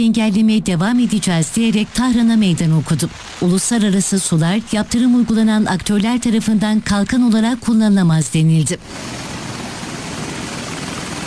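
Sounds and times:
speech: 0.0s - 9.3s
military helicopter rotor and engine roar during a raid on a seized oil tanker: 8.8s - 11.2s.

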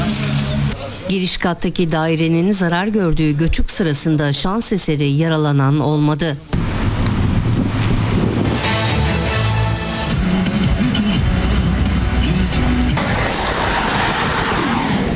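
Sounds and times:
speech: 1.1s - 6.8s
strong wind at an airport: 6.6s - 15.1s.

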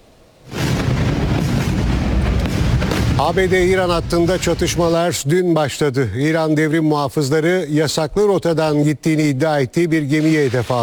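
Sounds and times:
loud heavy explosion in a southern Iranian city: 0.4s - 5.0s
dense steady roar and rumble after an explosion: 0.5s - 5.0s
speech: 3.2s - 10.8s.

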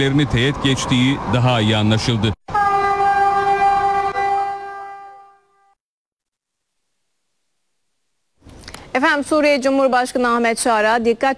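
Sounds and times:
speech: 0.0s - 2.4s, 9.0s - 11.3s
high-speed train horn blaring: 2.5s - 5.8s.

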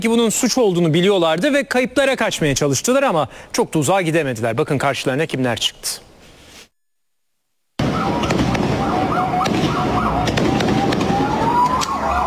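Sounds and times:
speech: 0.0s - 6.1s
fireworks crackling and banging at night: 7.8s - 12.2s.

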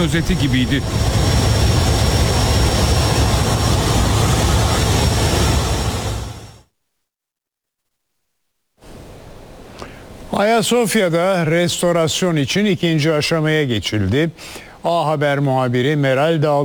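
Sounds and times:
speech: 0.0s - 1.3s, 10.4s - 16.6s
airplane engine roar through the plane's open door: 0.0s - 6.6s
strong rushing wind through open airplane door: 0.0s - 6.6s.

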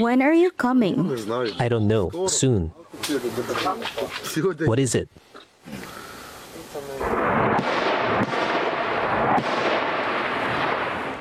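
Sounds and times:
speech: 0.0s - 6.0s
continuous heavy rumble of explosions: 6.9s - 11.1s
loud artillery blasts: 7.0s - 11.1s.

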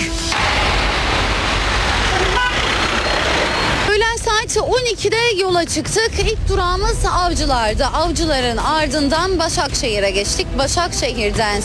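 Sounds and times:
dense city traffic rumbling with engines droning: 0.0s - 11.6s
car horn tooting: 1.7s - 3.9s
speech: 4.6s - 11.6s.

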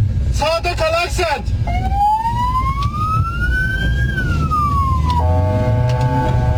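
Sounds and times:
traffic rumble: 0.0s - 6.5s
speech: 0.4s - 2.1s
ambulance siren wailing: 1.6s - 6.5s.

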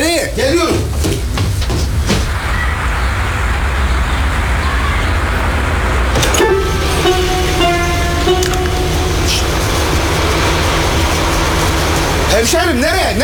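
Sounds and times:
traffic-like noise: 0.5s - 13.2s
car engine rumble: 6.0s - 13.2s
high whining tone: 6.2s - 12.9s.

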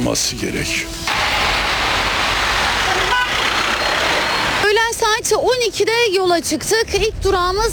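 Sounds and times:
gridlocked city traffic rumbling in Istanbul Turkey after schools reopened: 0.0s - 7.7s
speech: 0.1s - 1.4s, 5.1s - 7.7s
car horns honking: 0.8s - 4.6s.

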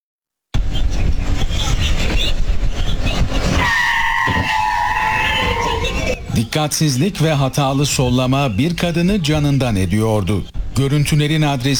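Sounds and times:
dense rough road noise: 0.6s - 11.7s
car skidding with loud tire squeal: 3.4s - 6.3s
speech: 6.5s - 11.7s.

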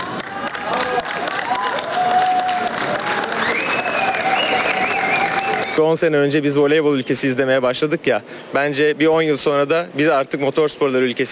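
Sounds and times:
crowd applauding a pilot at an airport: 0.0s - 5.8s
speech: 5.8s - 11.3s.

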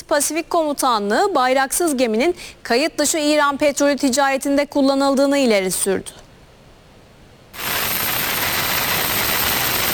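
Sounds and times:
speech: 0.1s - 6.2s
military helicopter rotor roar over an oil tanker in the Indian Ocean: 7.6s - 9.9s.

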